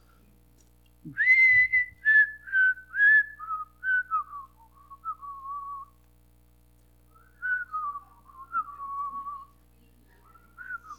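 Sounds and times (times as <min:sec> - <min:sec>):
person whistling a familiar melody: 0:01.1 - 0:05.9, 0:07.1 - 0:09.4.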